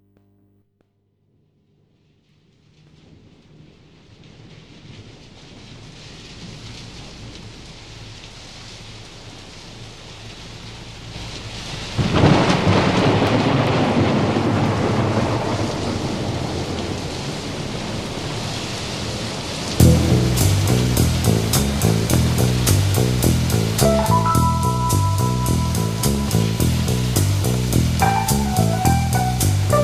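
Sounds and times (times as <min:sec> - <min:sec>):
heavy rain: 0:01.9 - 0:29.8
thunder cracking and rumbling: 0:02.8 - 0:07.9, 0:11.8 - 0:29.8.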